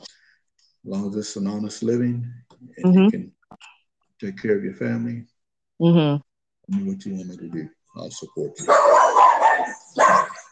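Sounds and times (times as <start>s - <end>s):
speech: 0.8s - 3.4s, 4.2s - 9.0s
dog barking: 8.6s - 10.5s.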